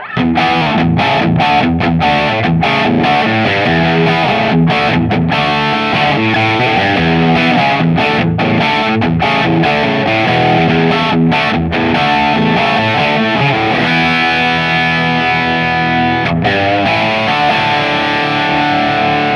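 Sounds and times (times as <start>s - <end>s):
crunch electric guitar with boost pedal on: 0.0s - 19.3s.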